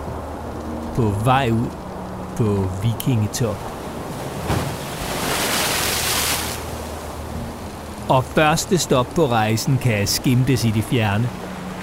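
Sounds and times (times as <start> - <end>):
speech: 1.0 - 1.8, 2.4 - 3.7, 8.1 - 11.4
waves sloshing and crashing against a wooden hull: 3.6 - 7.0.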